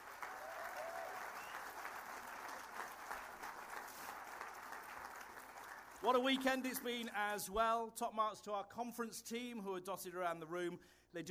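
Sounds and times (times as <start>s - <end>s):
applause from a large audience: 0.0s - 7.1s
speech: 6.0s - 11.3s.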